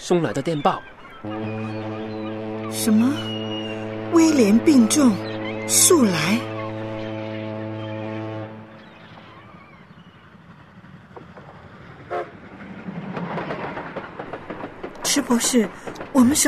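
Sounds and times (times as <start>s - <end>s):
train rolling along, rattling and rumbling: 0.0s - 16.4s
speech: 0.1s - 3.4s, 4.1s - 6.5s, 15.1s - 16.4s
train horn toot as a train reaches a station: 1.2s - 9.6s, 12.1s - 12.4s.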